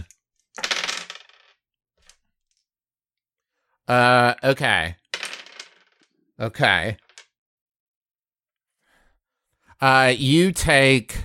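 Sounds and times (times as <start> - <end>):
dice clattering and rattling across a hard surface: 0.6 - 2.2, 5.1 - 6.1, 6.9 - 7.3
speech: 3.9 - 5.0, 6.4 - 7.0, 9.8 - 11.2.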